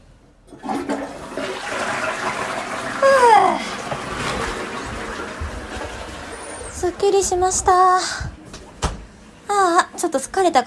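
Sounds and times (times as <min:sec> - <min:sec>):
household toilet flushing: 0:00.4 - 0:07.4
speech: 0:07.0 - 0:08.3, 0:10.1 - 0:10.6.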